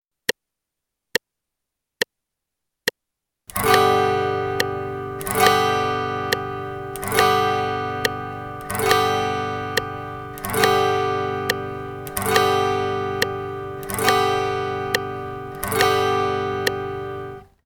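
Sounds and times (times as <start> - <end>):
guitar strumming quarter notes in G: 3.5 - 17.6.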